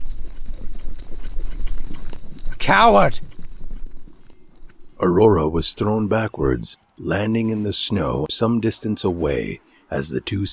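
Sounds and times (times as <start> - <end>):
horses galloping across snow: 0.0 - 6.1
speech: 2.7 - 3.3, 5.0 - 10.5.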